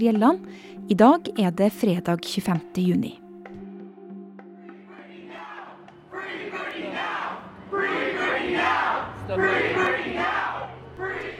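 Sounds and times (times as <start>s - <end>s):
speech: 0.0s - 3.2s, 9.3s - 10.3s
crowd of protesters chanting outside a courthouse in Los Angeles: 4.7s - 11.3s.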